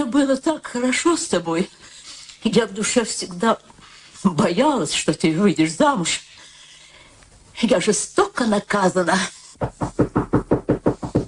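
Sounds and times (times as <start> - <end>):
speech: 0.0 - 6.3, 7.6 - 10.1
knocking on a door: 9.6 - 11.2.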